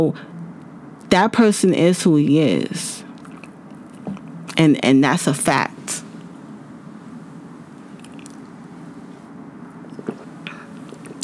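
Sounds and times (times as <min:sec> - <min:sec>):
speech: 0:00.0 - 0:00.3, 0:01.1 - 0:03.1, 0:04.5 - 0:06.0
steady low hum: 0:00.0 - 0:11.2
person sipping and swallowing water: 0:03.0 - 0:04.6, 0:07.4 - 0:09.1, 0:09.7 - 0:11.2
wet mouth clicks: 0:03.1 - 0:04.6, 0:07.8 - 0:09.0, 0:09.7 - 0:11.2.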